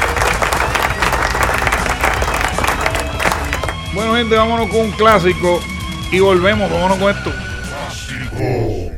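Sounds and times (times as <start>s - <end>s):
crowd applause: 0.0s - 4.8s
speech: 3.9s - 7.5s, 8.4s - 8.8s.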